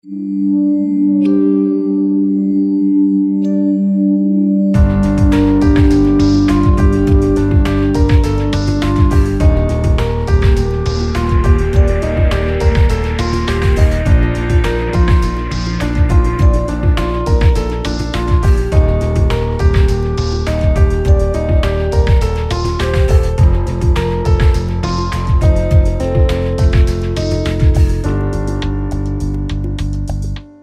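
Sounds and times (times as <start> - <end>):
bar piano keys playing: 0.0 - 30.6.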